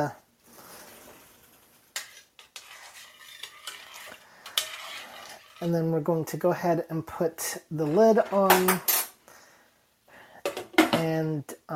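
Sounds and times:
speech: 0.0s - 0.2s, 5.6s - 9.0s, 11.2s - 11.7s
utensil stirring food in a pot while cooking: 1.0s - 6.0s.

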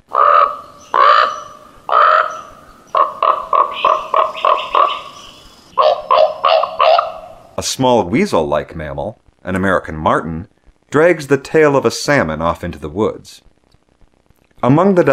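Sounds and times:
raven croaking on a shoreline: 0.0s - 7.6s
speech: 7.6s - 13.5s, 14.6s - 15.1s.

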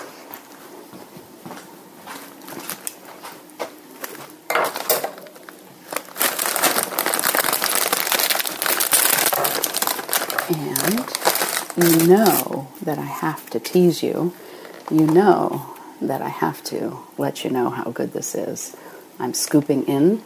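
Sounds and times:
crackles and clatters: 2.0s - 12.6s, 14.5s - 15.3s
bag of lime-flavoured Doritos tortilla chips crinkling as it is opened and handled: 4.0s - 15.5s
speech: 11.8s - 20.2s.

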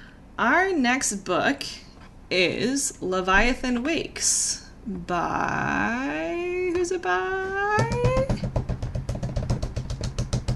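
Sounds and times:
speech: 0.4s - 7.9s
rapid tapping on a computer keyboard as a drumroll: 7.5s - 10.5s.

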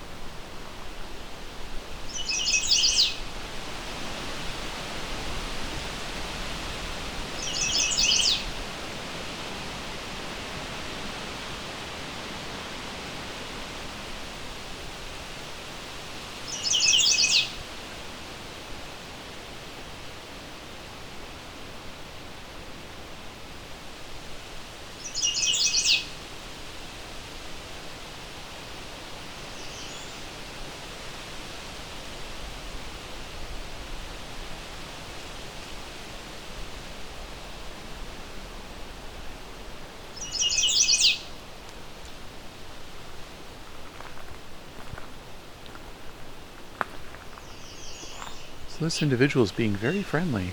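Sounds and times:
steady hiss of noise: 0.0s - 50.5s
warbler singing short high bright song phrases: 2.1s - 3.2s, 7.4s - 8.5s, 16.5s - 17.6s, 25.0s - 26.1s, 29.6s - 30.2s, 40.2s - 41.3s, 47.4s - 50.5s
speech: 48.8s - 50.5s.

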